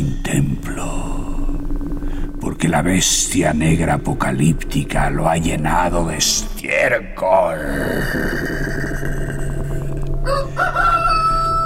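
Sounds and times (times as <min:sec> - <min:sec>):
steady low droning hum: 0:00.0 - 0:11.6
speech: 0:02.6 - 0:08.8
rooster crowing: 0:10.2 - 0:11.6.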